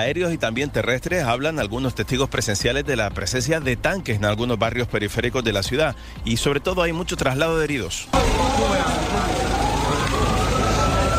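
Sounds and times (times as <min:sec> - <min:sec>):
speech: 0:00.0 - 0:10.4
dense street noise and traffic rumble: 0:00.0 - 0:11.1
ambulance siren wailing en route to hospital: 0:08.1 - 0:11.1.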